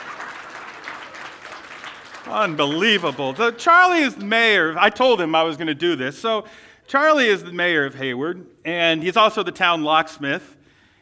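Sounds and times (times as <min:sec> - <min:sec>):
audience applause at a public event: 0:00.0 - 0:04.2
speech: 0:02.2 - 0:10.6.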